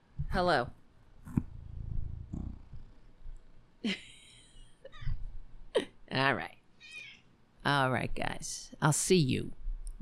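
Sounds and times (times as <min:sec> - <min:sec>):
speech: 0:00.3 - 0:01.4, 0:03.8 - 0:04.1, 0:06.2 - 0:06.5, 0:07.6 - 0:09.9
cat purring: 0:01.3 - 0:03.5.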